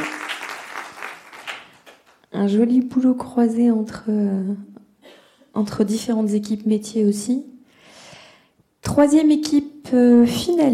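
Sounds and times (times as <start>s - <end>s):
audience applause after a presentation: 0.0s - 2.1s
speech: 2.4s - 4.7s, 5.6s - 7.5s, 9.0s - 10.7s.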